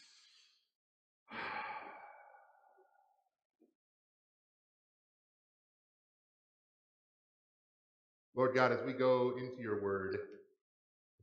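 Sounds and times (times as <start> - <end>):
deep breath with sighing exhale: 1.3 - 3.1
speech: 8.4 - 10.4.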